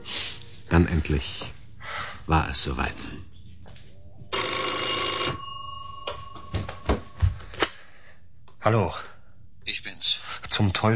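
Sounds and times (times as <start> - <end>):
speech: 0.8 - 1.6, 2.3 - 3.3, 8.6 - 9.1, 10.0 - 10.9
old-fashioned telephone bell ringing on a nightstand: 4.3 - 7.1.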